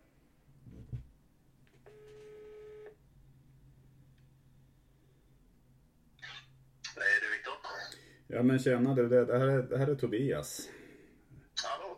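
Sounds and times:
telephone tone while a call is placed: 0:01.8 - 0:03.0
speech: 0:08.3 - 0:10.8.

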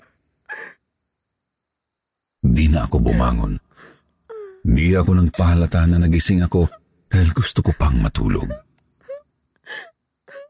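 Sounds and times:
woman wailing and sobbing: 0:00.5 - 0:00.8, 0:03.0 - 0:04.6, 0:07.6 - 0:10.4
speech: 0:02.6 - 0:03.9, 0:04.7 - 0:08.6
faint breathy hiss: 0:03.2 - 0:04.0.

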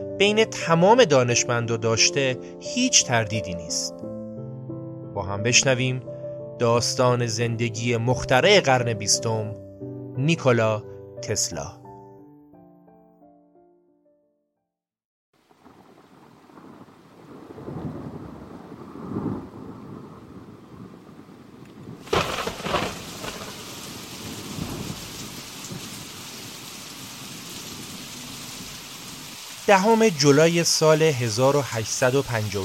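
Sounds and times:
speech: 0:00.2 - 0:04.1, 0:05.2 - 0:09.6, 0:10.2 - 0:11.8, 0:29.7 - 0:32.6
steady pouring rain in a heavy thunderstorm: 0:15.4 - 0:32.6
deep rolling rumbles of thunder: 0:15.6 - 0:29.3
sharp thunder crack: 0:15.7 - 0:26.6.

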